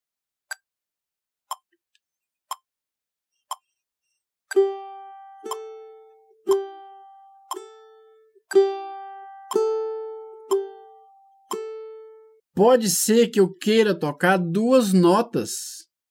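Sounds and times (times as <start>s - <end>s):
metronome clicks: 4.5s - 5.9s, 6.5s - 11.8s
plucked open-string notes on G and A strings: 4.5s - 12.4s
speech: 12.6s - 15.8s.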